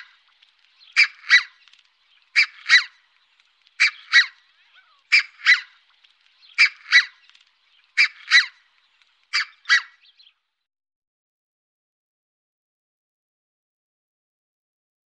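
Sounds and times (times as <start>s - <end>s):
red-breasted goose calls: 1.0s - 1.6s, 2.3s - 3.0s, 3.8s - 5.8s, 6.6s - 7.2s, 8.0s - 8.6s, 9.3s - 10.0s.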